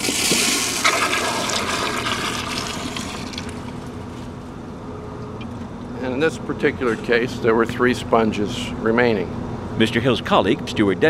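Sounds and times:
toilet flushing: 0.0 - 3.9
toilet gurgling and refilling: 0.0 - 3.9
speech: 6.2 - 11.0.

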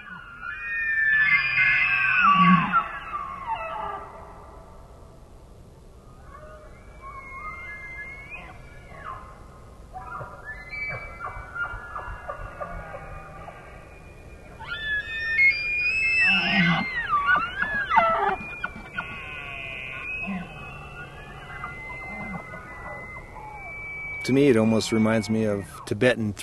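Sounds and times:
elk bugling with whistling squeals and low grunting: 0.0 - 4.4, 6.1 - 26.0
speech: 24.3 - 26.4.

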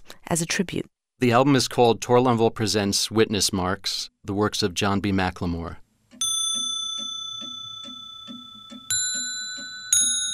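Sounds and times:
speech: 0.3 - 5.8
clock bells chiming: 6.2 - 10.3.

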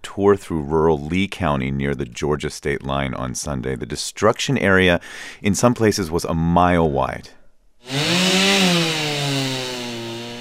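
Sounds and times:
speech: 0.2 - 8.1
chainsaw cutting through piles of wood: 7.8 - 10.3.

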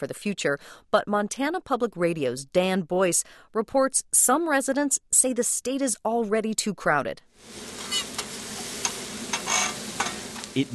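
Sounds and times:
speech: 0.0 - 7.9, 10.6 - 10.7
hash browns frying on a breakfast griddle: 7.4 - 10.7
utensils scraping and tapping on a breakfast griddle: 7.8 - 10.5.

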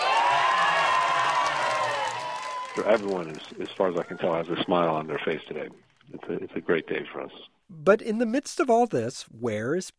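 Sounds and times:
crowd applauding and cheering in a laboratory at a Nobel Prize announcement: 0.0 - 6.6
speech: 2.8 - 9.9.

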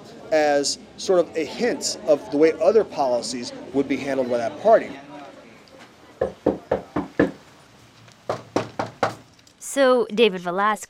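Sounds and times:
speech: 0.3 - 5.1, 9.8 - 10.8
knuckles knocking on a wooden door: 6.2 - 7.4, 8.3 - 9.2.

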